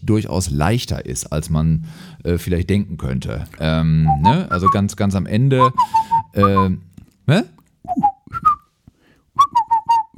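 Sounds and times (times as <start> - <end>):
speech: 0.1 - 8.0
person whistling a short wandering tune: 5.6 - 6.7, 7.9 - 8.7, 9.4 - 10.1.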